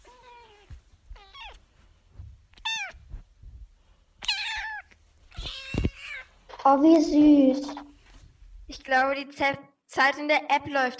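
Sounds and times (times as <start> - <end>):
domestic cat meowing: 0.0 - 1.6, 2.6 - 3.0, 4.2 - 6.6
soft low rumbling: 2.0 - 3.8
speech: 6.6 - 7.8, 8.9 - 10.9.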